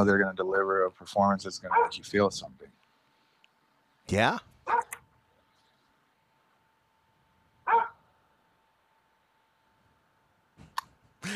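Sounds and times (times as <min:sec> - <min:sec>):
speech: 0:00.0 - 0:02.8, 0:04.1 - 0:04.8
faint steady hum: 0:00.0 - 0:11.3
dog barking: 0:01.7 - 0:02.0, 0:04.6 - 0:05.0, 0:07.6 - 0:08.0.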